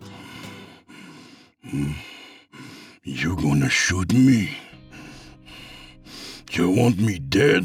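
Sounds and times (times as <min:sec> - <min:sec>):
heavy ragged breathing: 0:00.0 - 0:03.1, 0:04.5 - 0:06.9
speech: 0:01.7 - 0:02.1, 0:03.1 - 0:04.6, 0:06.6 - 0:07.6.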